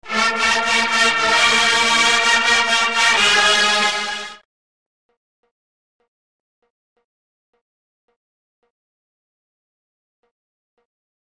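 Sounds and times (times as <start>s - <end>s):
very short fanfare: 0.0s - 4.4s.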